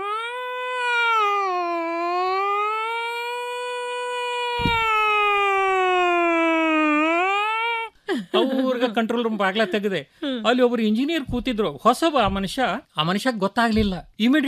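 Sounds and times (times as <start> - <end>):
human voice imitating a siren wail: 0.0 - 7.9
speech: 8.4 - 14.4.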